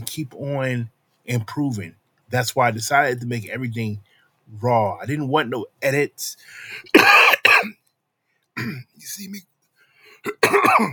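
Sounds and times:
speech: 0.1 - 7.8, 8.6 - 9.5, 10.2 - 10.9
person coughing: 6.8 - 7.8, 8.6 - 8.9, 10.2 - 10.9
throat clearing: 6.9 - 7.7, 8.6 - 8.9, 10.2 - 10.9.

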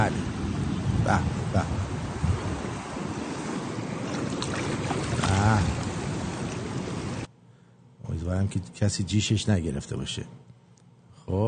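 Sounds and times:
sea waves and surf: 0.0 - 7.3
wind noise: 0.0 - 7.3
speech: 1.0 - 1.8, 8.4 - 10.6, 11.3 - 11.4.

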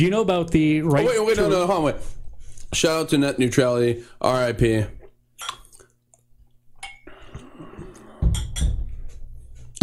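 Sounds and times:
speech: 0.0 - 5.6
sharp glassy clinks: 8.4 - 8.8.

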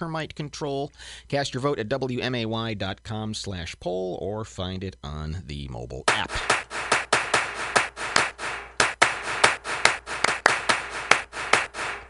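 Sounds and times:
speech: 0.0 - 6.7
sharp hand claps: 6.1 - 12.0.

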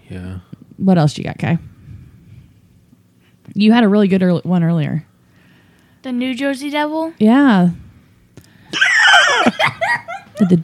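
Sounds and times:
speech: 0.1 - 1.7, 3.5 - 5.1, 6.0 - 7.8, 9.5 - 10.6
shrill eerie creature scream: 8.7 - 9.6
laughter: 8.8 - 10.6.

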